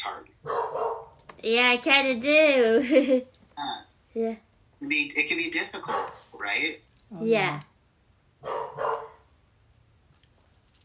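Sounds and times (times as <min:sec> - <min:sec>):
speech: 0:00.0 - 0:00.6, 0:01.4 - 0:07.7, 0:08.4 - 0:09.1
dog barking: 0:00.4 - 0:01.1, 0:05.8 - 0:06.2, 0:08.4 - 0:09.3.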